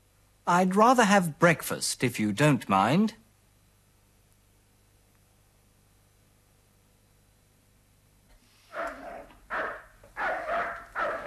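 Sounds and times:
speech: 0.5s - 3.2s
dog barking in the next apartment: 8.7s - 11.2s.

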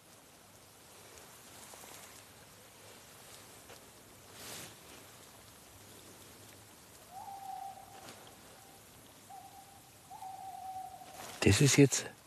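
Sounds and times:
steady hiss: 0.0s - 12.2s
tawny owl hooting: 7.0s - 11.4s
speech: 11.4s - 12.2s.

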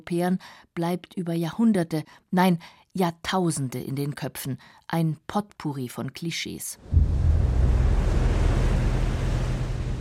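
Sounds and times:
speech: 0.1s - 7.2s
ocean surf roaring: 6.9s - 10.0s
wind buffeting: 6.9s - 10.0s.

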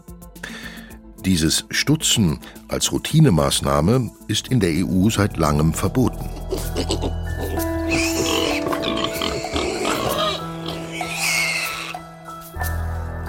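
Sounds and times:
speech: 1.2s - 6.2s
pigs grunting and oinking: 6.0s - 12.0s.

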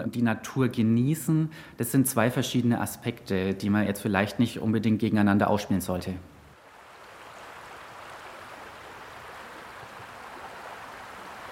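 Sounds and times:
speech: 0.0s - 6.3s
rushing water of a brook: 6.5s - 11.5s.

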